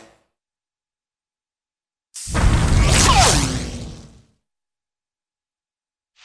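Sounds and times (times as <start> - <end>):
cartoon explosive blast: 2.2 - 4.3
cartoon bullet ricochet: 2.3 - 4.2.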